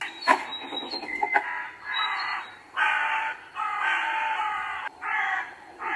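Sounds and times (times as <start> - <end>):
crows cawing: 1.4 - 5.9.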